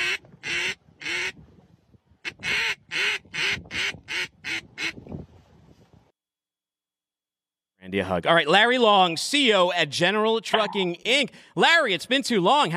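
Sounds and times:
duck call blown by a Labrador dog: 0:00.0 - 0:01.4, 0:02.2 - 0:05.0
speech: 0:07.9 - 0:12.7.

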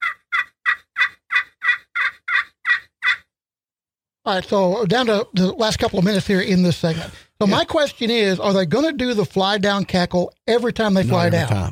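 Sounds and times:
raspy old hen turkey yelps made on a hunting call with a striker: 0:00.0 - 0:03.3
speech: 0:04.2 - 0:11.7.

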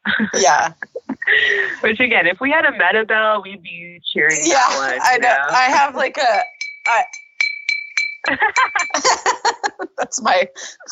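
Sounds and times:
people laughing: 0:00.0 - 0:01.9, 0:04.4 - 0:05.7, 0:08.3 - 0:10.8
lively voices: 0:00.0 - 0:07.2, 0:08.0 - 0:10.8
speech: 0:00.2 - 0:07.2, 0:08.3 - 0:09.2, 0:10.0 - 0:10.8
San Pellegrino glass water bottle clinking: 0:04.4 - 0:09.3.

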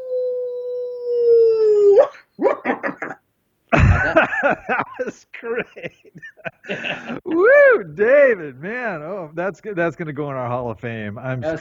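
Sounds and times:
hound dog howling: 0:00.0 - 0:02.7
short yelping bursts: 0:02.0 - 0:03.2
laughter: 0:02.6 - 0:08.4
speech: 0:05.0 - 0:11.5.

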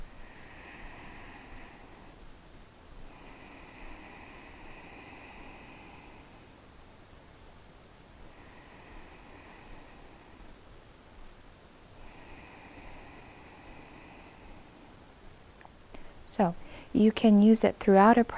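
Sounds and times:
slow hissing ujjayi breaths through the nose: 0:00.1 - 0:02.4, 0:03.0 - 0:06.8, 0:08.2 - 0:10.7, 0:11.9 - 0:17.0
speech: 0:16.4 - 0:18.3.

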